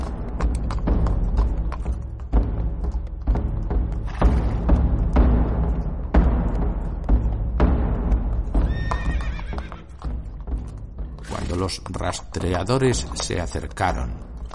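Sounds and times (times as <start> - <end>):
horse hooves clopping: 0.0 - 14.5
horse giving a high whinny: 8.5 - 10.4
speech: 11.7 - 14.5.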